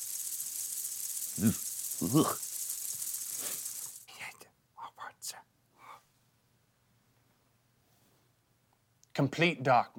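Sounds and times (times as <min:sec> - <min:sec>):
dense steady high-pitched rushing hiss: 0:00.0 - 0:04.1
speech: 0:01.4 - 0:02.5, 0:09.2 - 0:09.9.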